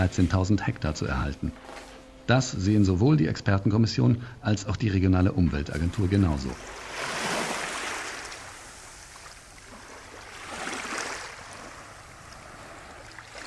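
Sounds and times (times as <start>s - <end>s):
speech: 0.0s - 7.2s
steady hiss of surf: 0.0s - 13.4s
gentle waves washing onto the sandy beach of Calamurtas: 6.0s - 13.4s.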